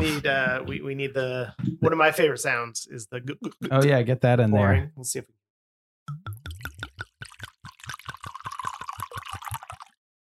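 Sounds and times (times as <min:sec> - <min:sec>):
speech: 0:00.2 - 0:05.4
white wine pouring from a bottle into glasses: 0:06.1 - 0:10.0.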